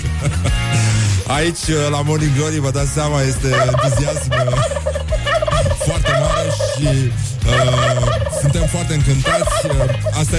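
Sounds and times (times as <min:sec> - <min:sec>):
laughter: 0:00.0 - 0:01.3
speech: 0:01.3 - 0:10.3
turkey gobbling: 0:03.4 - 0:10.3.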